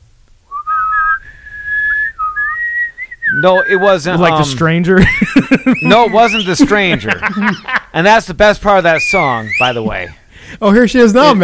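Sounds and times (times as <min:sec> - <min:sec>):
person whistling a short melody: 0:00.5 - 0:03.9, 0:09.0 - 0:10.0
speech: 0:03.4 - 0:11.4
laughter: 0:04.9 - 0:08.3, 0:09.0 - 0:10.2.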